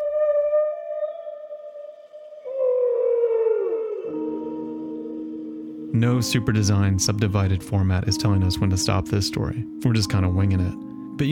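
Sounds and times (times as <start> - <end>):
whale song: 0.0 - 6.3
speech: 6.0 - 11.3.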